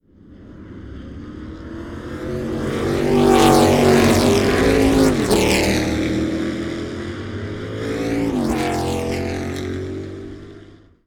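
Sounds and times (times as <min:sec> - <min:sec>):
pack engine running: 0:00.0 - 0:11.0.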